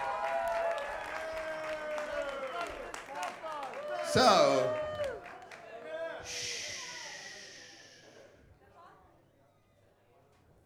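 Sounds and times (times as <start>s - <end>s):
audience applauding at a cabaret show: 0.0s - 7.7s
tonal vocal sounds from the crowd: 4.1s - 4.7s, 6.2s - 8.2s
speech: 4.1s - 4.8s.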